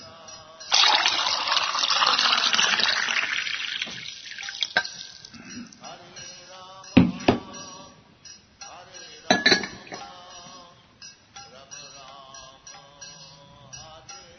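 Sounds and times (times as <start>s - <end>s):
water pouring in a rushing stream: 0.7s - 5.4s
container being handled with clinks and knocks: 0.7s - 6.3s, 9.3s - 10.1s.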